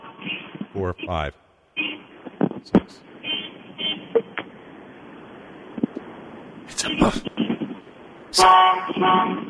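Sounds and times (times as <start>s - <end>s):
faint low traffic rumble: 0.0s - 9.4s
car horns honking from annoyed motorists: 0.2s - 2.1s, 3.2s - 4.2s, 8.4s - 9.4s
speech: 0.8s - 1.4s, 2.6s - 3.1s, 6.8s - 7.3s, 8.4s - 9.4s.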